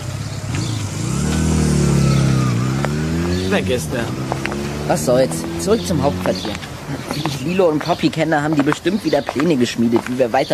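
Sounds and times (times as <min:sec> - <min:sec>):
motorcycle engine revving and pulling off: 0:00.0 - 0:07.5
speech: 0:03.5 - 0:04.3, 0:04.9 - 0:10.5.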